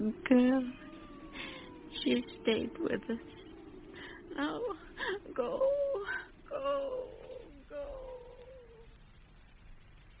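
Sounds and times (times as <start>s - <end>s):
low noise: 0.0s - 10.1s
speech: 0.1s - 0.8s, 2.0s - 3.4s, 4.3s - 8.0s
cat meowing: 0.5s - 4.8s.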